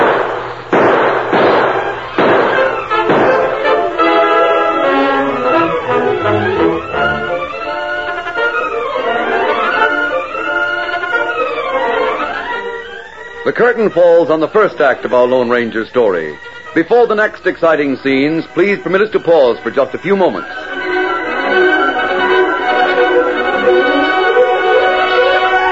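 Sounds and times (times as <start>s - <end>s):
gunshots in a gunfight: 0.0s - 5.7s
whining wavering tones swooping up and down: 0.0s - 25.6s
speech: 13.6s - 20.6s.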